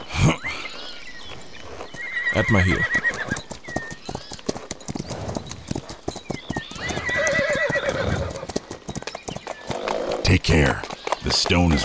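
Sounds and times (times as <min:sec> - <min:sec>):
horse hooves clip-clopping: 0:00.0 - 0:11.8
speech: 0:00.3 - 0:00.6, 0:02.4 - 0:03.1, 0:10.4 - 0:11.8
horse neighing: 0:02.0 - 0:03.4, 0:06.7 - 0:08.5.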